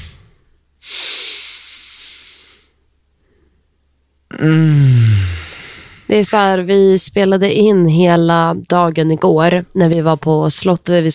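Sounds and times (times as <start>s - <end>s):
long deep breath drawn in close to the microphone: 0.8s - 3.7s, 4.5s - 6.1s
speech: 4.4s - 5.0s, 6.1s - 11.1s.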